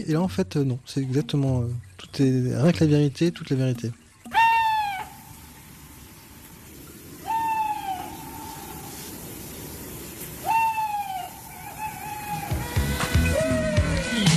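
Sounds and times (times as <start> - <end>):
speech: 0.0 - 4.0
owl hooting: 4.3 - 5.4, 7.1 - 14.2.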